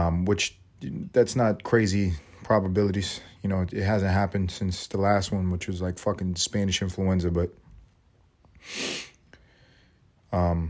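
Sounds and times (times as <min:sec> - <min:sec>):
speech: 0:00.1 - 0:07.6, 0:08.6 - 0:09.1, 0:10.3 - 0:10.6
person sniffling from an itchy nose: 0:08.6 - 0:09.8.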